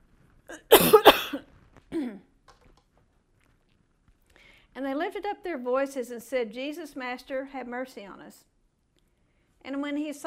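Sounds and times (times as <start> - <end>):
person reading aloud from the Bible coughing: 0.5 - 1.4
softer throat clearing: 0.5 - 2.2
speech: 5.2 - 8.5, 9.6 - 10.2.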